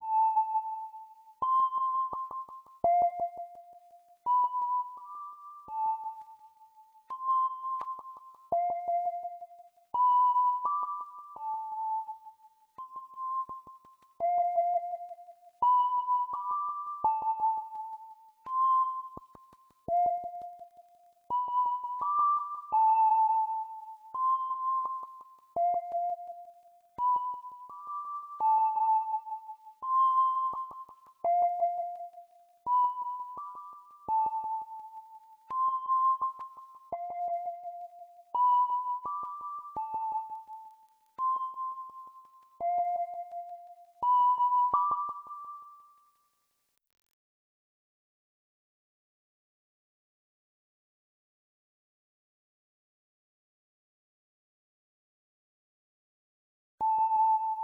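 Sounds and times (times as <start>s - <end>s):
background synthesizer: 0.0s - 45.9s.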